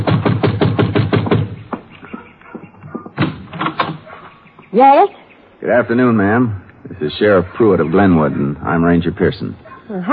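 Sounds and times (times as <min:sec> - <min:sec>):
knocking on a door: 0:00.0 - 0:03.9
speech: 0:04.8 - 0:10.1.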